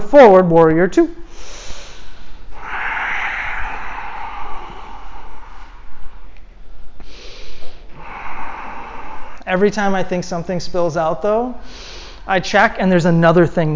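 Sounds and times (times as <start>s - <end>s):
speech: 0.1s - 1.2s, 9.5s - 13.7s
deep yoga breathing through the nose and mouth: 1.2s - 10.0s, 11.5s - 12.3s.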